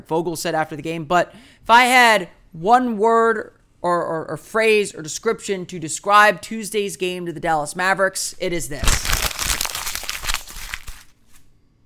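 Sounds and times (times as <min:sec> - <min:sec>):
speech: 0:00.0 - 0:09.2
sheet of paper crinkling and crumpling: 0:08.6 - 0:11.5.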